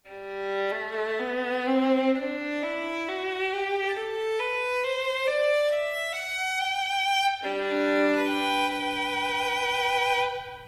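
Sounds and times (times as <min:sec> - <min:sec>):
violin made in 1757 playing solo: 0:00.0 - 0:10.6.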